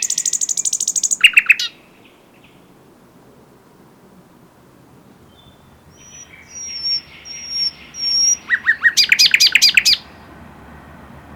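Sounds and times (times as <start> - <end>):
Luscinia megarhynchos common nightingale song: 0.0 - 10.3
background hiss: 0.0 - 10.3.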